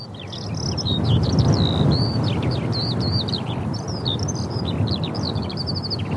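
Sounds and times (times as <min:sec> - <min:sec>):
skylark singing high warbling and trilling notes: 0:00.0 - 0:06.1
wind buffeting the microphone: 0:00.0 - 0:06.1.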